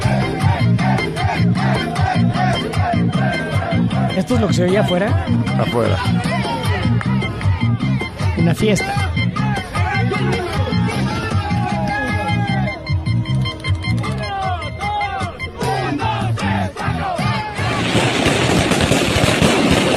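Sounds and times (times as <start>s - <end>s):
crowd shouting at a party: 0.0s - 19.8s
speech: 4.2s - 6.3s, 8.4s - 9.0s
firecrackers exploding outdoors at a party outside a hotel: 17.6s - 19.9s.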